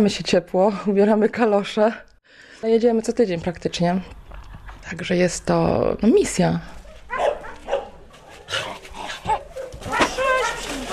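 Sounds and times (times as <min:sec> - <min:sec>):
speech: 0:00.0 - 0:04.2, 0:04.8 - 0:06.8
dogs barking at an animal shelter: 0:06.8 - 0:10.9.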